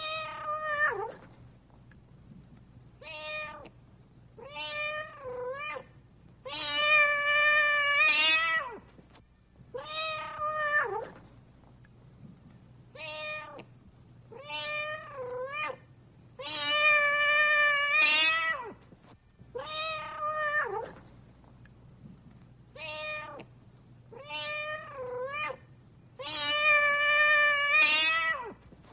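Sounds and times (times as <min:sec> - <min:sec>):
cat meowing: 0:00.0 - 0:01.2, 0:03.0 - 0:03.7, 0:04.4 - 0:08.8, 0:09.8 - 0:11.2, 0:13.0 - 0:13.7, 0:14.3 - 0:15.8, 0:16.4 - 0:18.8, 0:19.5 - 0:21.0, 0:22.8 - 0:23.5, 0:24.1 - 0:28.6
faint low hum: 0:00.0 - 0:28.9.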